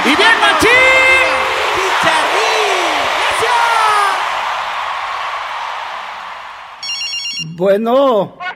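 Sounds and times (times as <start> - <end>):
people shouting and whooping: 0.0 - 6.8
crowd clapping and cheering: 0.0 - 7.0
speech: 7.6 - 8.4.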